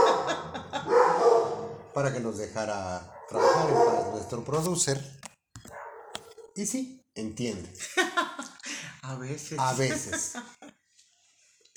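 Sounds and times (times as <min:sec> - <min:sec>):
laughter: 0:00.0 - 0:01.1, 0:07.8 - 0:08.8, 0:09.6 - 0:10.7
dog barking: 0:00.0 - 0:02.0, 0:03.0 - 0:04.4, 0:05.6 - 0:06.6
speech: 0:02.0 - 0:05.3, 0:06.6 - 0:08.3, 0:09.0 - 0:10.6.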